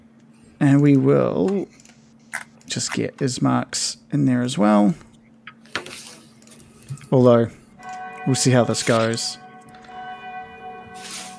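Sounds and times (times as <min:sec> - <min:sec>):
speech: 0:00.6 - 0:01.8, 0:02.7 - 0:05.1, 0:07.1 - 0:07.6, 0:08.2 - 0:09.4
church bell tolling: 0:07.8 - 0:11.3.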